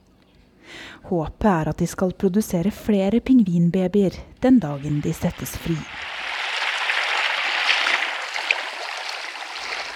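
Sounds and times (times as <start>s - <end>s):
speech: 1.0s - 6.1s
sea water washing at Seaforth Beach outside Cape Town in the morning: 4.8s - 9.9s
small sea water splashes: 5.6s - 9.9s.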